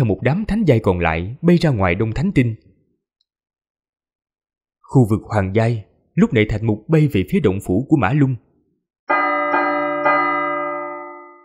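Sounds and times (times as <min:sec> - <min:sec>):
speech: 0:00.0 - 0:02.6, 0:04.9 - 0:08.4
large alarm bell struck: 0:09.1 - 0:11.4.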